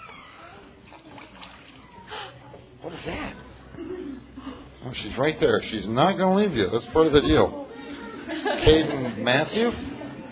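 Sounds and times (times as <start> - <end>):
water sloshing in a baptismal pool during a child's baptism: 0.8 - 2.1
speech: 2.8 - 7.6, 8.4 - 9.9
laughter: 7.3 - 10.3.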